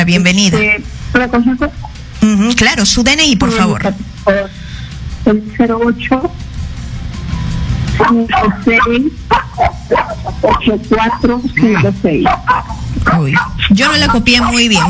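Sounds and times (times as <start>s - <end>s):
speech: 0.0s - 4.6s, 5.3s - 6.4s, 8.0s - 14.8s
small dog barking: 8.0s - 14.8s.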